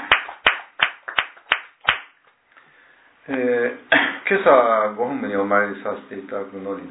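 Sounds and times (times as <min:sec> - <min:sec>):
applause for a birthday celebration: 0:00.0 - 0:02.3
speech: 0:03.3 - 0:06.8.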